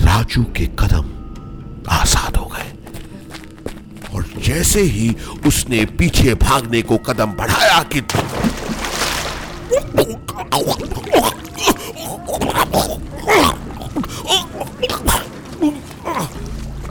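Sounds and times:
speech: 0:00.2 - 0:01.1, 0:04.4 - 0:08.6
choppy water sloshing and scattered splashing: 0:08.0 - 0:16.8
someone falling into water with a loud broad splash: 0:08.1 - 0:09.9.

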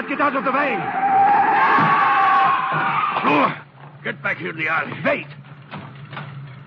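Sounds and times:
car tires skidding and screeching while speeding at a man: 0:00.0 - 0:03.7
speech: 0:00.1 - 0:02.0, 0:02.7 - 0:05.4.

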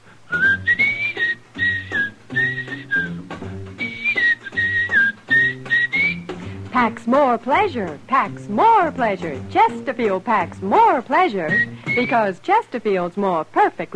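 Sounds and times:
man whistling a jingle melody: 0:00.3 - 0:06.4, 0:11.5 - 0:12.2
steady instrumental accompaniment: 0:00.4 - 0:12.3
speech: 0:06.8 - 0:13.9.

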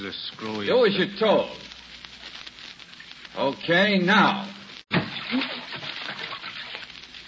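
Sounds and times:
speech: 0:00.0 - 0:01.7, 0:03.4 - 0:04.6, 0:05.3 - 0:05.5
water splashing in a full bathtub as a man thrashes underwater: 0:04.9 - 0:07.2.

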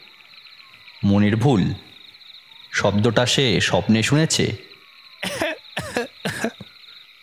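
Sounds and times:
speech: 0:01.0 - 0:01.9, 0:02.8 - 0:05.4
person coughing in a room: 0:05.2 - 0:06.7.

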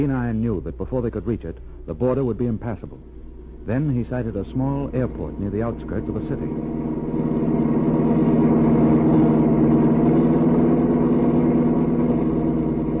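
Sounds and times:
speech: 0:00.0 - 0:07.3
car engine racing down mountain road: 0:03.5 - 0:12.9.

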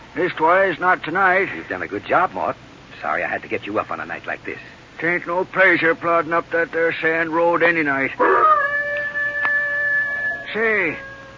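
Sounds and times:
speech: 0:00.2 - 0:08.6, 0:10.5 - 0:11.1
hound howling: 0:08.2 - 0:11.3.

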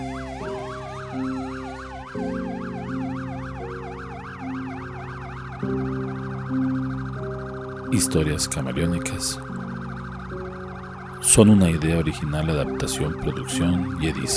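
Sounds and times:
emergency vehicle sirens wailing: 0:00.0 - 0:14.3
low rumble of traffic: 0:00.0 - 0:14.3
speech: 0:07.9 - 0:09.6, 0:11.3 - 0:14.3.

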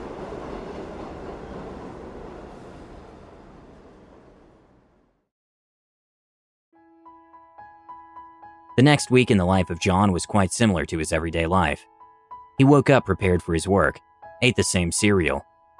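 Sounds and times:
metro train rumbling along the rails: 0:00.0 - 0:05.2
speech: 0:08.8 - 0:11.9, 0:12.6 - 0:15.5.

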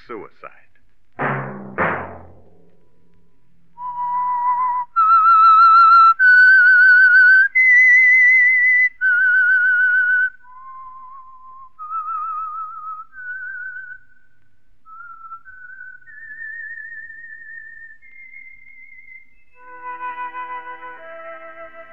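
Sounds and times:
speech: 0:00.1 - 0:00.8
knock: 0:01.2 - 0:02.7
solo whistled melody: 0:03.7 - 0:14.3, 0:14.9 - 0:21.9.

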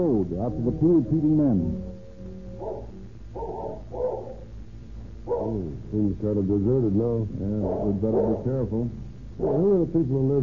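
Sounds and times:
speech: 0:00.0 - 0:01.9, 0:05.3 - 0:10.4
low steady hum: 0:00.0 - 0:10.4
cur dog barking fiercely: 0:02.6 - 0:04.5, 0:05.2 - 0:05.7, 0:07.6 - 0:08.5, 0:09.4 - 0:09.8.

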